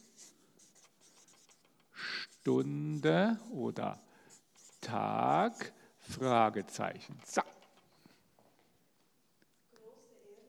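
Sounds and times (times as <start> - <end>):
handwriting with a pen on paper: 0.0 - 7.4
speech: 2.4 - 4.1, 4.9 - 7.6.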